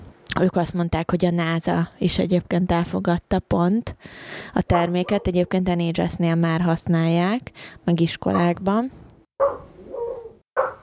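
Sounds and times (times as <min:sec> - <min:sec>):
speech: 0:00.4 - 0:09.6
dog barking outside: 0:04.7 - 0:05.6, 0:08.3 - 0:08.6, 0:09.4 - 0:10.8
dog growling and whining: 0:09.4 - 0:10.8.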